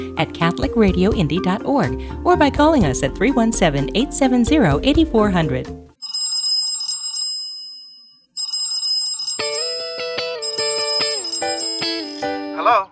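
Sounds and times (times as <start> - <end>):
speech: 0.0 - 5.8
telephone ringing with electronic trilling tone: 6.0 - 12.7
synthetic ringtone melody: 8.4 - 12.7.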